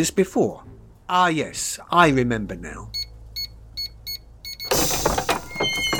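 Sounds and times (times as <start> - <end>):
speech: 0.0 - 3.0
electronic keypad beeps: 3.0 - 4.8
doggy door sliding open with mechanical whoosh and rattle: 4.7 - 5.9.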